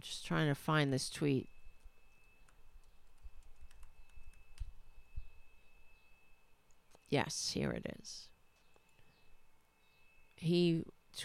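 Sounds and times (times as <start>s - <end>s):
speech: 0.0s - 1.5s, 7.1s - 8.3s, 10.4s - 11.2s
faint steady hum: 0.0s - 11.2s
typing on a computer keyboard: 2.4s - 4.8s.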